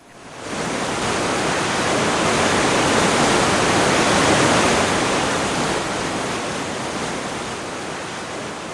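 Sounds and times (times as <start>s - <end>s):
river rushing with drifting ice floes: 0.0s - 8.7s.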